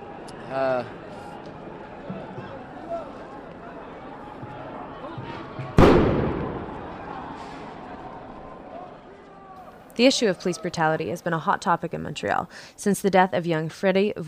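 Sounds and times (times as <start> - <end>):
restless outdoor crowd of protesters: 0.0 - 12.5
speech: 0.5 - 1.0, 10.0 - 14.2
explosive bang from a police-fired projectile: 5.8 - 7.6.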